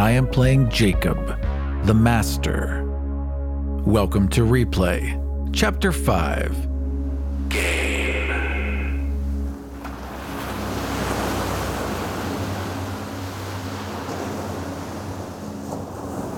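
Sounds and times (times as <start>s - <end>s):
speech: 0.1s - 2.8s, 3.8s - 6.7s, 7.5s - 7.8s
ocean waves breaking on shore: 7.0s - 16.3s.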